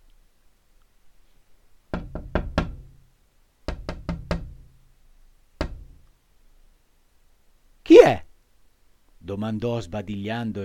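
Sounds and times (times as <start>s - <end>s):
knocking on a door at daybreak: 1.9s - 3.0s, 3.6s - 4.7s, 5.6s - 6.0s
speech: 9.3s - 10.6s.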